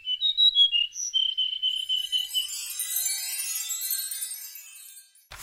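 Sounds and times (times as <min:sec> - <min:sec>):
bluebird chirping and whistling: 0:00.0 - 0:03.0
twinkling shimmer: 0:01.9 - 0:05.3.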